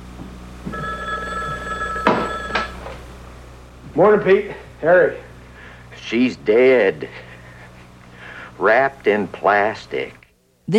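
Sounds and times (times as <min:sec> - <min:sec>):
black telephone bell ringing: 0:00.7 - 0:03.0
speech: 0:04.0 - 0:05.3, 0:06.0 - 0:07.3, 0:08.6 - 0:10.7.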